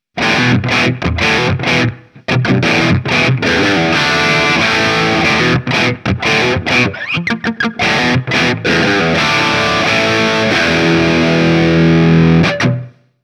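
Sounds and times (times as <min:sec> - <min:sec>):
crunchy rhythm: 0:00.2 - 0:13.0.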